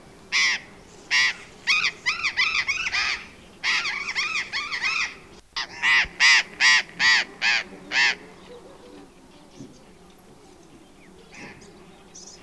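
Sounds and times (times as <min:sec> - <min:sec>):
Burrowing parrot Cyanoliseus patagonus harsh calls: 0:00.3 - 0:08.2.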